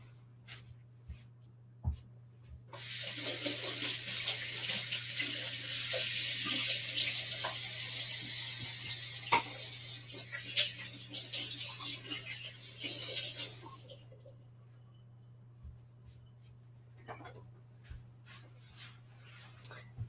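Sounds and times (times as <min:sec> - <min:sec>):
tap water running into a sink while washing oily hands: 0:02.8 - 0:14.3.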